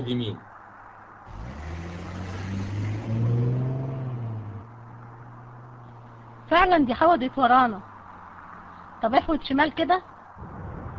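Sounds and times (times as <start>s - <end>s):
speech: 0.0s - 0.5s, 6.5s - 7.9s, 9.0s - 10.1s
car engine accelerating while turning: 1.3s - 9.0s.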